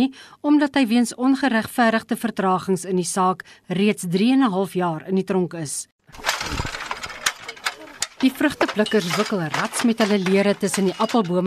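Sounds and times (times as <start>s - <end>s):
speech: 0.0s - 6.7s, 8.2s - 11.4s
tractor engine rumbling while hauling apples: 6.1s - 11.4s
sharp metallic clatters and knocks: 6.2s - 11.4s.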